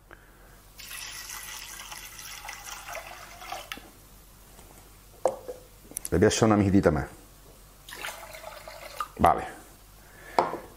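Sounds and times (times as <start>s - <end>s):
fish stock poured into a pot: 0.8s - 3.9s, 7.9s - 9.2s
speech: 6.1s - 7.2s.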